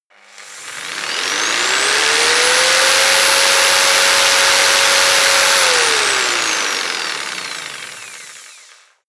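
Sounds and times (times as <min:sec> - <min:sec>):
jigsaw engine running medium fast: 0:00.0 - 0:09.0.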